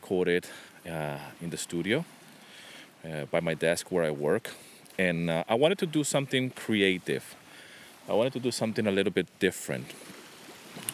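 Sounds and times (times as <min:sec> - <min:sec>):
sea waves washing along a beach: 0:00.0 - 0:10.9
speech: 0:00.1 - 0:02.2, 0:03.0 - 0:07.4, 0:08.0 - 0:10.2.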